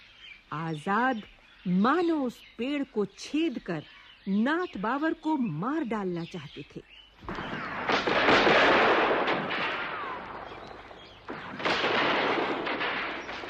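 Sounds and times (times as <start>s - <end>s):
speech: 0.5s - 7.4s
continuous barrage of gunfire from both sides: 7.3s - 13.4s.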